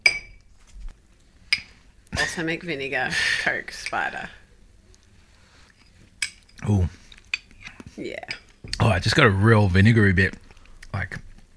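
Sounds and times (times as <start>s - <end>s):
glass clinking: 0.0s - 0.5s, 6.2s - 6.6s
speech: 2.2s - 4.4s, 8.0s - 8.3s, 8.9s - 11.2s.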